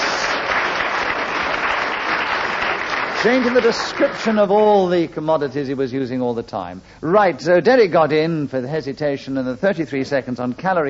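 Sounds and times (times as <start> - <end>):
studio audience applause: 0.0 - 4.5
speech: 3.2 - 10.8.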